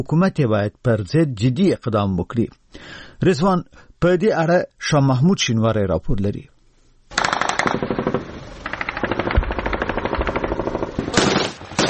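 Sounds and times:
speech: 0.0s - 6.5s
light and heavy weapons fire in a clash between Afghan security forces and Islamic State fighters: 7.1s - 11.8s.

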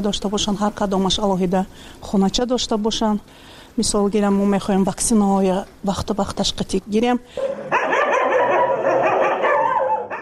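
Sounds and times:
speech: 0.0s - 7.7s
dogs barking at an animal shelter in Dushanbe: 7.4s - 10.2s.

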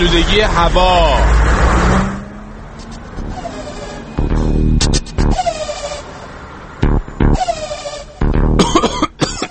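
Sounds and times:
city street traffic: 0.0s - 9.4s
harsh tonal squeals: 3.0s - 8.6s.

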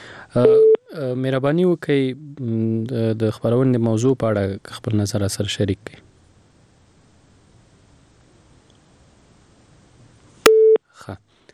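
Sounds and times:
speech: 0.3s - 6.1s, 11.1s - 11.3s
phone busy tone beep after a call is cut off: 0.4s - 0.9s, 10.5s - 10.8s.

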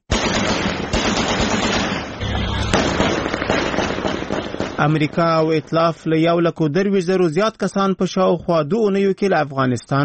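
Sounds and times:
fireworks bursting over Kabul at night: 0.0s - 6.2s
celebratory gunfire over Kabul at night: 0.1s - 6.0s
speech: 4.8s - 10.0s.

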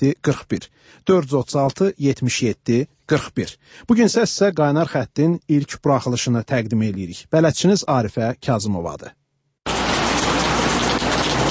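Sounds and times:
speech: 0.0s - 9.2s
fine autumn drizzle falling over Baku: 9.7s - 11.5s.

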